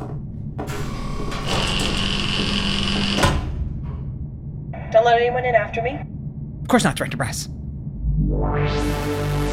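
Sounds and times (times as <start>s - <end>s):
loud mechanical whirring and grinding of mechanical doors sealing shut: 0.7s - 3.5s
speech: 5.1s - 6.1s, 6.7s - 7.6s, 8.3s - 9.3s.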